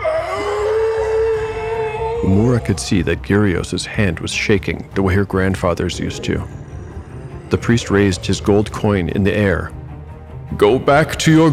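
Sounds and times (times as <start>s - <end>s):
monstrous creatures howling: 0.0s - 9.7s
low rumbling undertone: 1.7s - 10.9s
speech: 2.2s - 6.6s, 7.5s - 9.8s, 10.5s - 11.5s.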